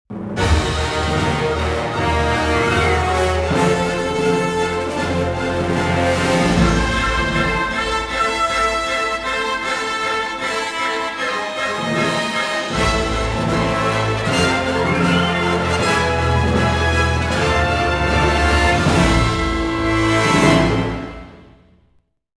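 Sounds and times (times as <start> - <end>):
main music: 0.1 - 22.1.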